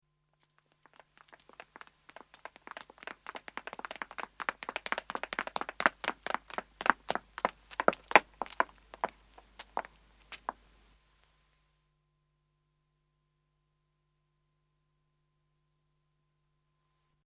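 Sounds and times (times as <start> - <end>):
footsteps of two women running, approaching and stopping: 0.4 - 10.7.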